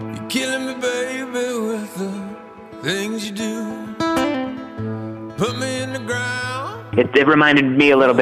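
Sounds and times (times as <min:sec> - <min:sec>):
late-eighties-style post-outlaw country pop duet with full band: 0:00.1 - 0:04.4, 0:05.4 - 0:07.1
speech: 0:07.1 - 0:08.1.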